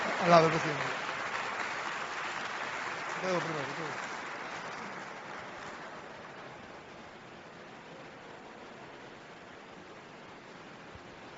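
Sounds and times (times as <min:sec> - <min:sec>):
large crowd applauding: 0:00.0 - 0:07.3
speech: 0:00.2 - 0:01.0, 0:03.2 - 0:04.1.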